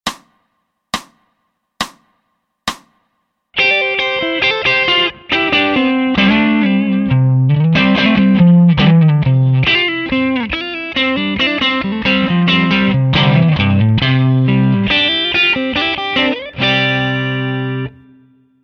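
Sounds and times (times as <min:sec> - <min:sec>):
C major rip: 0:03.6 - 0:18.2.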